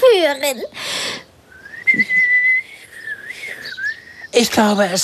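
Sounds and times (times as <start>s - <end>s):
speech: 0.2s - 1.0s, 4.4s - 5.0s
person whistling a single sustained tone: 1.6s - 4.0s.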